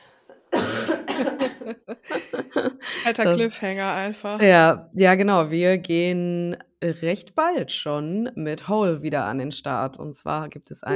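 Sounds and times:
person coughing: 0.5 - 1.8
speech: 0.9 - 2.2, 3.1 - 10.9
laughter: 1.0 - 3.3.

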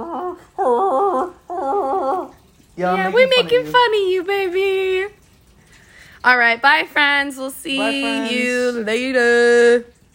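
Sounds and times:
dog giving long wavering whiny vocalizations: 0.0 - 2.4
speech: 2.8 - 5.2, 6.2 - 9.9.

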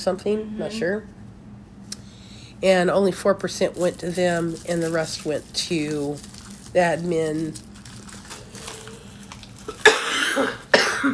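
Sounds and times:
speech: 0.0 - 1.2, 2.6 - 7.7, 10.4 - 11.1
smoker's harsh rasping phlegmy cough: 9.7 - 11.1.

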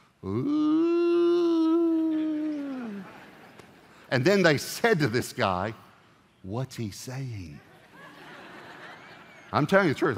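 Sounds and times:
speech: 0.2 - 0.8, 4.1 - 5.8, 6.4 - 7.7, 9.5 - 10.1
voice imitating whale song: 0.2 - 3.0
laughter: 7.6 - 9.7.

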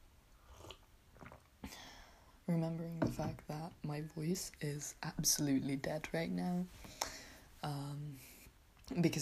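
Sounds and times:
sipping hot tea: 0.4 - 1.5
swallowing: 0.5 - 1.5
gulp: 0.5 - 1.8
speech: 2.5 - 7.0, 7.6 - 9.1.

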